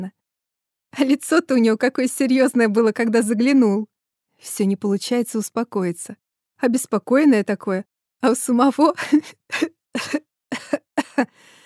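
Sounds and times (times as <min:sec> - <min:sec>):
speech: 0:00.9 - 0:11.6
unwell person coughing: 0:10.0 - 0:11.3.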